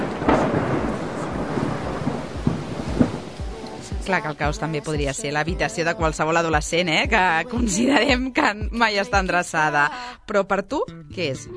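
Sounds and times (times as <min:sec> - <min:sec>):
deep rumbles of thunder: 0:00.0 - 0:08.8
dense heavy rain in the city: 0:00.0 - 0:09.0
speech: 0:04.1 - 0:11.5.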